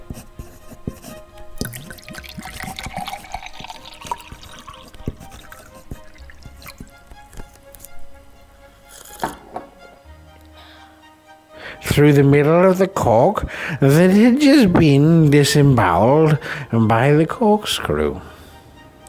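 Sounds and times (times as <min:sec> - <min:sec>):
brandy poured from a bottle into a glass: 0:01.6 - 0:07.7
speech: 0:12.0 - 0:18.3.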